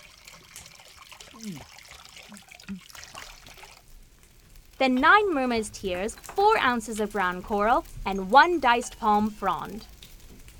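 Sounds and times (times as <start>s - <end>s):
low gurgles: 0.0s - 4.8s
salt water from a becalmed sea pouring as a potion base: 0.0s - 10.2s
speech: 1.4s - 2.8s, 4.8s - 9.9s.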